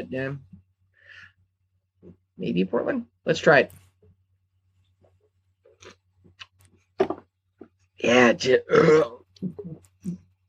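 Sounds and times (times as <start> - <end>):
speech: 0.0 - 0.5, 2.0 - 3.8, 8.0 - 10.2
low croaky burps after drinking seltzer: 8.6 - 9.8.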